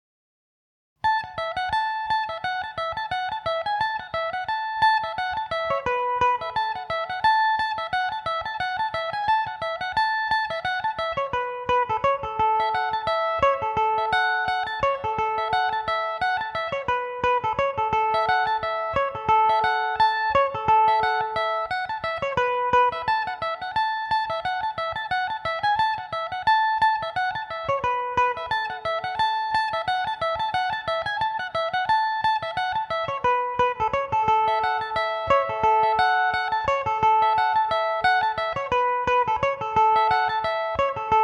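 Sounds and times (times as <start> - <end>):
electric mandolin playing in A major: 1.0 - 41.2.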